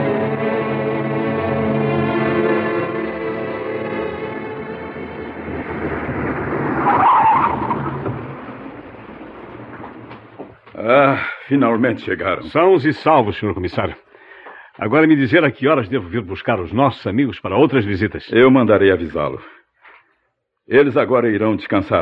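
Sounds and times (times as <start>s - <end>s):
car engine droning: 0.0s - 11.1s
loud rising squeal: 1.2s - 10.7s
car tires skidding as the car narrowly avoids a truck: 3.7s - 13.2s
speech: 11.5s - 14.1s, 14.8s - 19.6s, 20.7s - 22.0s.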